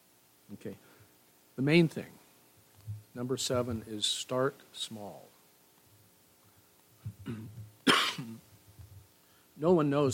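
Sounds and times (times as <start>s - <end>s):
speech: 0.5s - 1.0s, 1.6s - 2.2s, 2.9s - 5.3s, 7.3s - 7.6s, 9.6s - 10.1s
throat clearing: 7.0s - 8.4s
person coughing: 7.1s - 8.4s.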